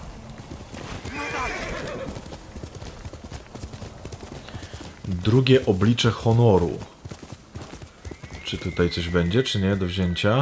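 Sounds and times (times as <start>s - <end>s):
constant noise: 0.0s - 10.4s
video game horse galloping hoofbeats: 0.0s - 10.4s
video game horse neighing: 1.0s - 2.2s, 8.1s - 10.4s
speech: 5.1s - 7.0s, 8.5s - 10.4s.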